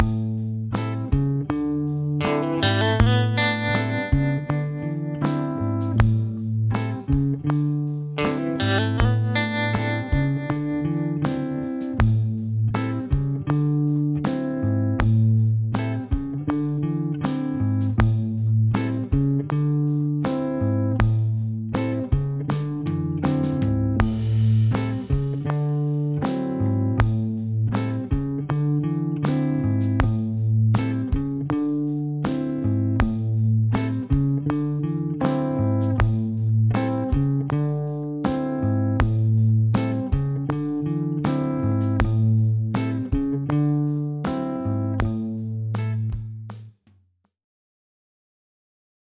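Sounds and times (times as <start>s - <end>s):
jazz backing track: 0.0s - 46.3s.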